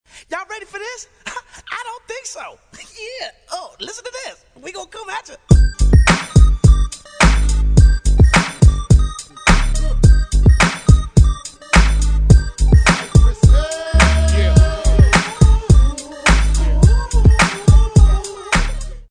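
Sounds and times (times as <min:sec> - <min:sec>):
wrestling entrance music: 0:05.5 - 0:19.0.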